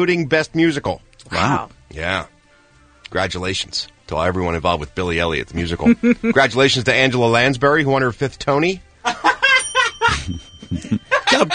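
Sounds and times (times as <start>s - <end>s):
speech: 0.0s - 2.4s, 3.1s - 9.4s, 10.3s - 11.5s
laughter: 5.6s - 6.6s, 9.0s - 11.5s
small bell ringing: 9.2s - 11.5s.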